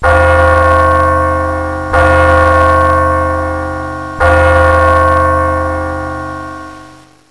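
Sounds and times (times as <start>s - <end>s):
bell: 0.0s - 7.2s.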